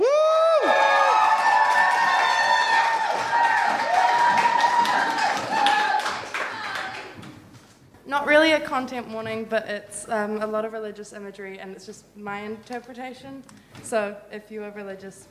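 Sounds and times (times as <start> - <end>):
crowd applauding: 0.0 - 7.2
people whooping and cheering: 0.0 - 7.2
speech: 8.7 - 15.2.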